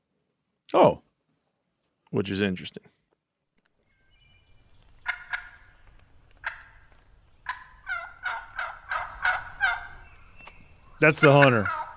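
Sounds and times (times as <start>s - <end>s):
speech: 0.7s - 1.0s, 2.1s - 3.0s, 11.0s - 11.8s
turkey hen gobbling in harsh rattling bursts: 5.0s - 11.9s.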